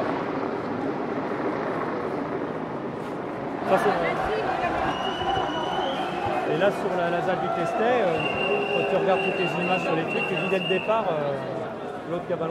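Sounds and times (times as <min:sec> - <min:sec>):
helicopter hovering overhead: 0:00.0 - 0:12.5
crowd's indistinct voices murmuring: 0:03.6 - 0:12.5
speech: 0:03.7 - 0:05.4, 0:06.5 - 0:12.5.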